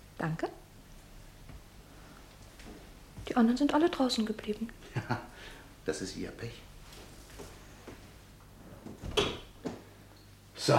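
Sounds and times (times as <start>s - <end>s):
speech: 0.2s - 0.6s, 3.3s - 6.7s
faint shuffling: 0.9s - 10.0s
door being closed: 8.8s - 9.8s.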